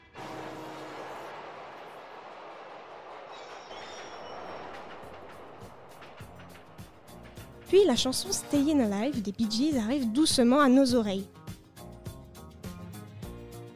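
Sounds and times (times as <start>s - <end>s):
subway train rumbling in New York: 0.0s - 10.2s
speech: 7.7s - 11.4s.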